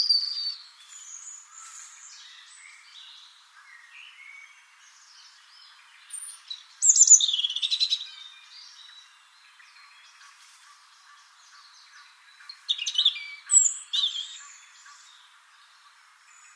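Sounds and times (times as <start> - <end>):
European robin Erithacus rubecula singing: 0.0 - 16.5.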